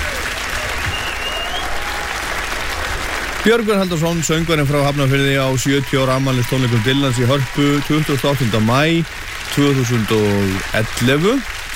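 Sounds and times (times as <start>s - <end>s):
concert audience clapping for a singer at a birthday tribute concert: 0.0s - 11.7s
faint whistle from a concert audience: 0.7s - 1.7s
speech: 3.4s - 11.6s.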